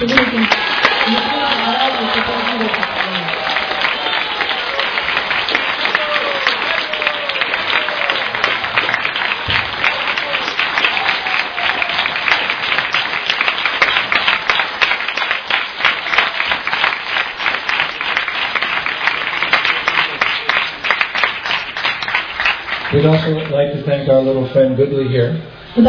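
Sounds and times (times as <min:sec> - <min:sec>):
speech: 0:00.0 - 0:03.0, 0:23.1 - 0:25.8
audience applauding for a speaker: 0:00.0 - 0:23.9.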